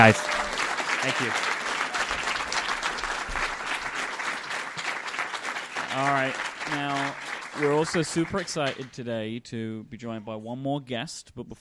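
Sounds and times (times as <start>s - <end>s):
speech: 0.0s - 0.4s, 1.0s - 1.5s, 6.0s - 11.5s
live audience applause: 0.0s - 8.9s.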